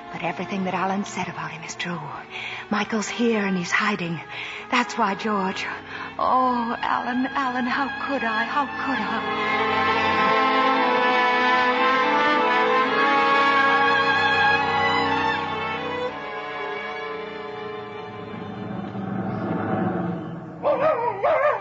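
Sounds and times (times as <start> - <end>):
sustained tonal music: 0.0 - 21.0
speech: 0.2 - 10.3
dog barking and yipping: 20.6 - 21.5.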